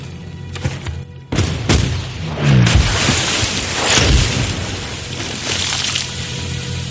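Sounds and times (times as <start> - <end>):
heavy booming ship cannon fire: 0.6 - 5.4
dense continuous roar: 1.4 - 6.8
shells landing in water: 2.8 - 6.2.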